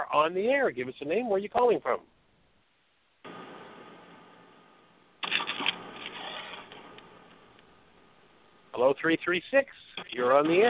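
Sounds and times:
speech: 0:00.1 - 0:02.2, 0:08.8 - 0:10.6
caller's papers rustling through a tinny phone line: 0:05.2 - 0:07.0.

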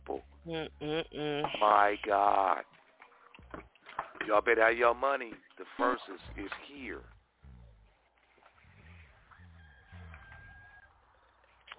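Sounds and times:
speech: 0:00.1 - 0:02.8, 0:03.5 - 0:07.2
rooster crowing: 0:08.8 - 0:11.3.

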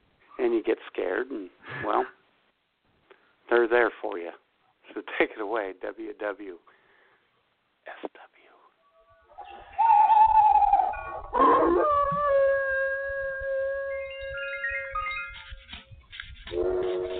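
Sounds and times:
speech: 0:00.4 - 0:02.2, 0:03.5 - 0:06.8, 0:11.4 - 0:12.2
owl-like hooting calls at night: 0:09.1 - 0:15.6
long sustained wavering dog howl: 0:09.3 - 0:15.2.

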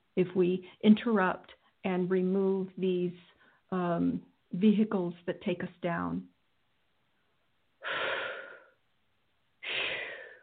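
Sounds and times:
speech: 0:00.2 - 0:06.3
heavy breathing: 0:07.8 - 0:08.8, 0:09.6 - 0:10.4.

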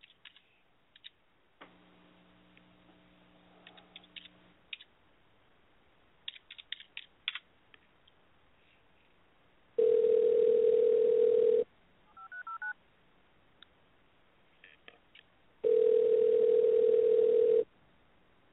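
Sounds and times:
telephone dial tone: 0:09.8 - 0:11.6, 0:15.6 - 0:17.7.

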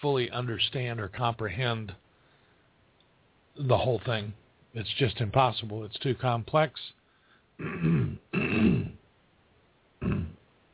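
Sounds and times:
speech: 0:00.0 - 0:02.0, 0:03.6 - 0:07.0, 0:07.6 - 0:09.0, 0:10.0 - 0:10.4
throat clearing from someone troubled by pollen season: 0:07.6 - 0:09.0, 0:10.0 - 0:10.4.

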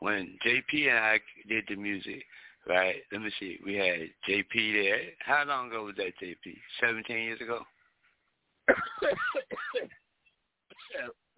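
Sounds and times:
speech: 0:00.0 - 0:07.8, 0:08.7 - 0:10.0, 0:10.9 - 0:11.3
harsh coughing with throaty rasp: 0:08.7 - 0:09.9, 0:10.7 - 0:11.1.

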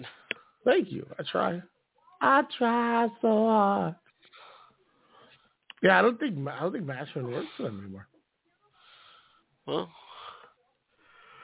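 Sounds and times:
speech: 0:00.6 - 0:04.0, 0:05.8 - 0:08.1, 0:09.6 - 0:10.0
person yawning: 0:09.7 - 0:10.4.

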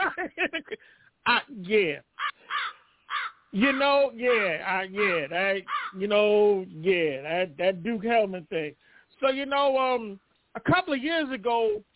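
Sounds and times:
laughter: 0:00.0 - 0:00.8
speech: 0:01.6 - 0:02.1, 0:03.6 - 0:11.9
crows cawing with harsh calls: 0:02.2 - 0:06.0.

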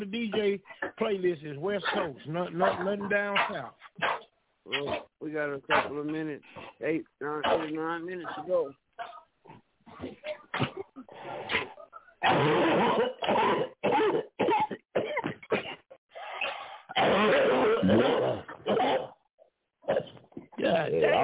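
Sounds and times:
speech: 0:00.0 - 0:14.2, 0:17.2 - 0:19.1, 0:19.9 - 0:21.2
person clearing their throat: 0:09.9 - 0:15.9, 0:16.9 - 0:19.2, 0:19.9 - 0:21.2
person coughing: 0:10.0 - 0:11.1, 0:12.2 - 0:15.9, 0:16.9 - 0:19.2.

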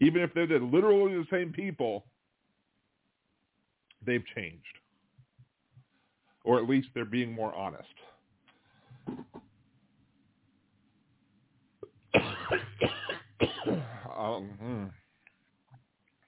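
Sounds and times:
speech: 0:00.0 - 0:02.2, 0:04.0 - 0:04.8, 0:06.4 - 0:08.1, 0:09.0 - 0:09.5, 0:12.1 - 0:15.0
person clearing throat: 0:09.1 - 0:09.4, 0:11.8 - 0:15.0
person coughing: 0:09.1 - 0:09.4, 0:12.2 - 0:14.8
soft vocal sounds: 0:14.0 - 0:15.1.

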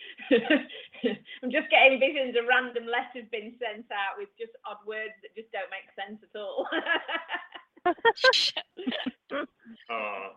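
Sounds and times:
speech: 0:00.3 - 0:10.3
person sneezing: 0:08.2 - 0:08.7
short voiced sounds: 0:08.2 - 0:08.8.

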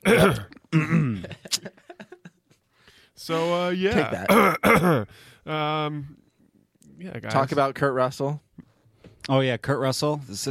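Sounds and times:
person clearing throat into the microphone: 0:00.0 - 0:01.4, 0:04.1 - 0:05.1
speech: 0:00.2 - 0:01.4, 0:03.2 - 0:06.2, 0:07.0 - 0:08.4, 0:09.3 - 0:10.4.

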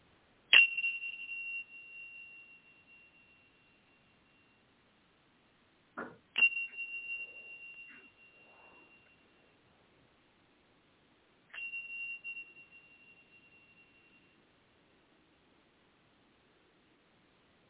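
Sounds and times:
chime struck during a guided breathing exercise: 0:00.5 - 0:04.6, 0:06.4 - 0:09.6, 0:11.5 - 0:14.4.

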